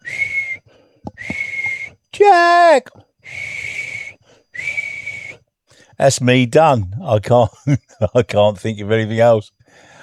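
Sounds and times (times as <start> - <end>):
person whistling: 0.0 - 2.0, 3.2 - 5.4
speech: 2.3 - 3.4, 6.0 - 9.9.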